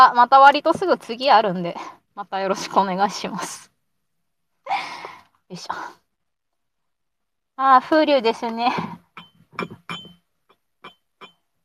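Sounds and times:
speech: 0.0 - 3.7, 5.5 - 6.0, 7.6 - 9.0, 9.6 - 10.1
glass cup clinking against ceramic coffee mug: 9.2 - 10.2, 10.8 - 11.4.

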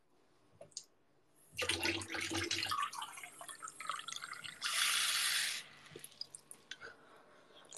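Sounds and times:
tap water pouring into a glass: 1.6 - 6.4.

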